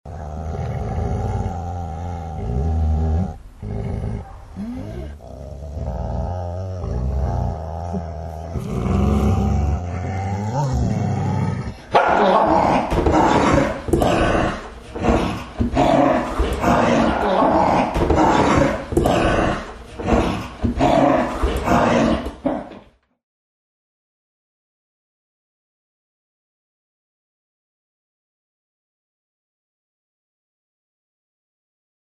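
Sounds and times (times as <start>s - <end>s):
dogs growling and snarling: 0.1s - 22.8s.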